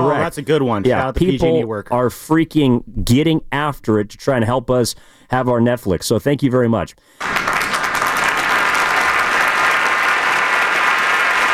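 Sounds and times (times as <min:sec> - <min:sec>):
speech: 0:00.0 - 0:07.5
applause from a group: 0:07.2 - 0:11.5.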